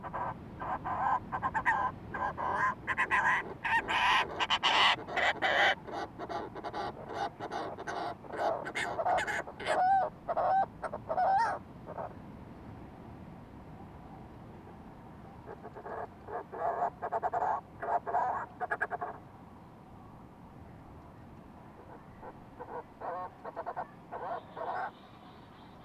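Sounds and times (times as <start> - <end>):
Fulmar prion calling in rough throaty pulsed phrases: 0.0 - 12.1, 15.5 - 19.2, 21.8 - 25.0.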